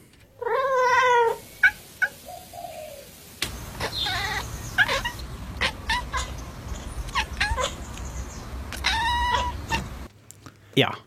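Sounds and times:
steady outdoor hiss: 0.0s - 11.0s
cat meow-like call: 0.4s - 2.1s, 3.8s - 10.1s
cat chattering at birds: 3.5s - 10.1s
speech: 10.8s - 11.0s.

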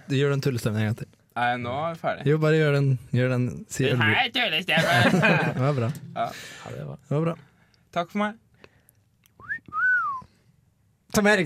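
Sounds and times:
speech: 0.1s - 8.4s, 11.1s - 11.4s
laughter: 4.7s - 5.9s
person whistling: 9.4s - 10.3s.

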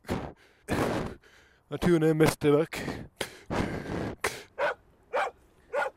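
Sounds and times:
speech: 1.7s - 3.7s
dog barking outdoors in Norwegian nature: 4.6s - 5.9s.

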